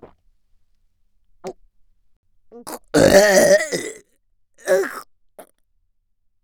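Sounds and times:
loud long burp: 2.7 - 4.0, 4.6 - 5.0
small throaty gulps: 2.7 - 4.0, 4.6 - 5.0.

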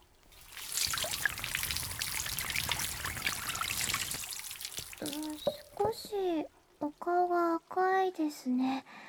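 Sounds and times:
water poured to rinse the ears: 0.0 - 7.2
speech: 7.1 - 8.9.

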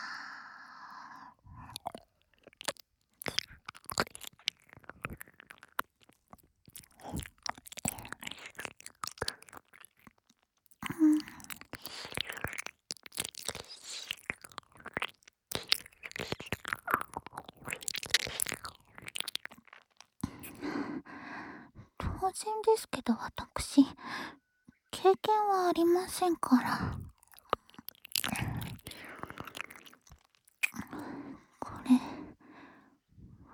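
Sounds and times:
ASMR ear-licking wet mouth sounds: 1.5 - 20.9, 25.7 - 32.4
speech: 22.3 - 24.3, 25.0 - 27.0.

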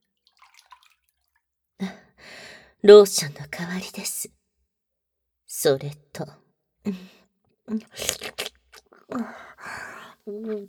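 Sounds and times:
hot water being poured: 0.3 - 1.1
speech: 2.8 - 4.4, 5.6 - 8.3, 9.1 - 9.4, 10.3 - 10.6.

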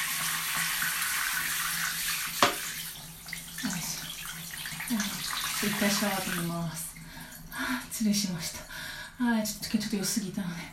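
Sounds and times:
water running to rinse away urine: 0.0 - 10.7
knock: 2.4 - 2.6
speech: 4.9 - 6.9, 7.6 - 10.7.

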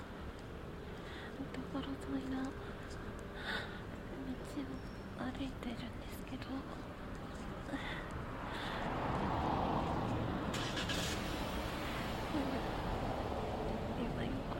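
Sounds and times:
car engine and tyre rumble: 0.0 - 14.5
speech: 1.4 - 3.6, 4.3 - 8.0
car pulling away on a street: 8.9 - 13.9.

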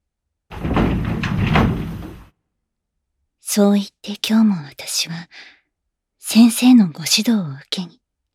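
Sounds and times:
classroom door sliding open: 0.5 - 2.3
speech: 3.6 - 5.6, 6.2 - 8.3.

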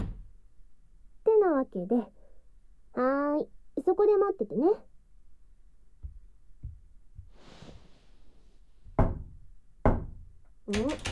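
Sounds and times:
knocking on a door: 0.0 - 0.3, 6.0 - 7.3, 8.9 - 11.1
speech: 1.6 - 2.2, 3.0 - 4.9, 10.7 - 11.1.

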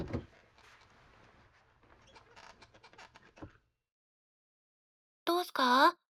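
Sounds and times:
reclining chair mechanism creaking and clicking: 2.0 - 3.5
speech: 5.5 - 6.0.

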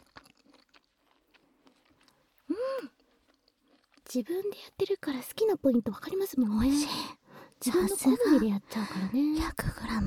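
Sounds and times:
peanuts crunching between the teeth in ASMR-style eating: 0.0 - 4.5
speech: 4.1 - 10.0.

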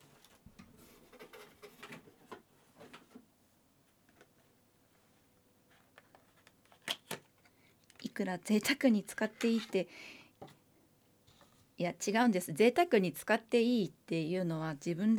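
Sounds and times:
crinkly taps and rustles opening new lotion bottle: 0.0 - 8.2
speech: 8.2 - 10.2, 11.8 - 15.1.

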